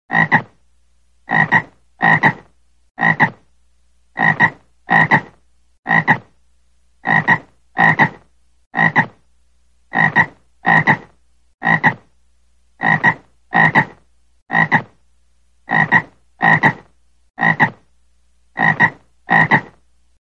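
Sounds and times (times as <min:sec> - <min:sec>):
frog calling: 0:00.1 - 0:00.6, 0:01.3 - 0:03.4, 0:04.2 - 0:06.3, 0:07.0 - 0:09.2, 0:09.9 - 0:12.1, 0:12.8 - 0:15.0, 0:15.7 - 0:17.8, 0:18.6 - 0:19.8.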